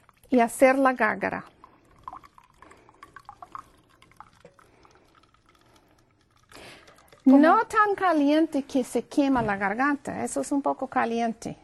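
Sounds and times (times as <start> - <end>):
hot water poured from a cooking pot into a glass: 0.0 - 8.3
speech: 0.3 - 1.5, 7.3 - 11.6.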